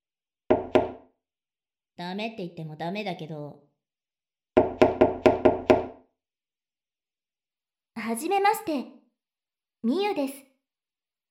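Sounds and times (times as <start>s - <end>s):
girl furiously knocking on a wooden bedroom door: 0.5s - 1.0s, 4.6s - 6.0s
speech: 2.0s - 3.7s, 8.0s - 9.0s, 9.8s - 10.5s.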